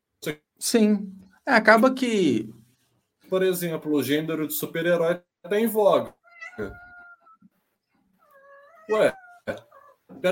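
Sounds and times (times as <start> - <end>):
speech: 0.2 - 2.6, 3.3 - 6.8, 8.9 - 10.2
cat meowing: 6.2 - 7.5, 8.2 - 10.2.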